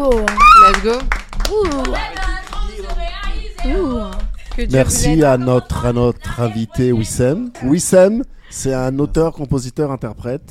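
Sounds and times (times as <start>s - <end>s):
speech: 0.0s - 2.2s, 3.6s - 10.4s
a few people clapping in a studio: 0.0s - 5.4s
several voices talking and exclaiming: 0.2s - 7.8s.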